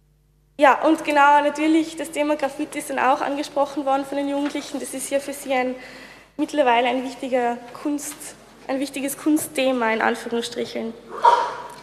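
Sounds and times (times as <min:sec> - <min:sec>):
speech: 0:00.6 - 0:11.5
person sneezing: 0:11.1 - 0:11.8.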